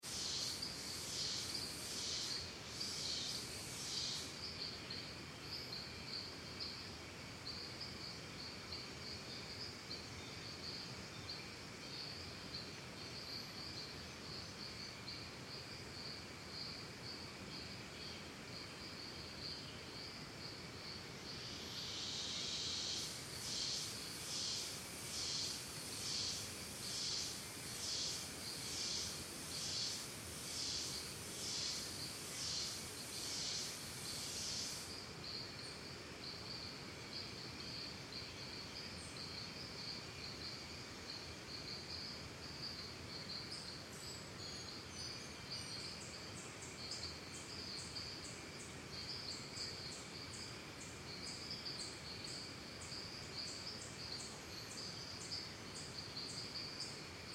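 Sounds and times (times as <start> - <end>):
cicadas in Costa Rica forests and jungle: 0.0 - 57.3.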